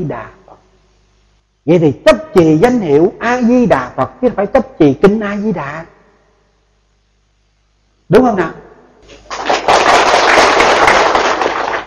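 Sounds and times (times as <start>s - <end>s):
speech: 0.0s - 0.4s, 1.6s - 6.0s, 8.1s - 9.5s
audience applause at a Buddhist dharma talk: 9.2s - 11.8s.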